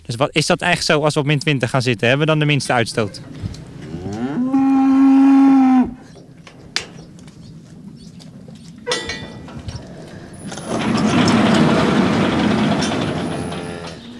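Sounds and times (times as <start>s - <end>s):
speech: 0.1s - 3.4s
shuffling and clanks in a barn: 1.3s - 4.6s, 5.9s - 14.1s
rumble of barn activity with animal sounds: 1.3s - 14.1s
Friesian Holstein dairy cow mooing in a barn: 3.1s - 6.2s.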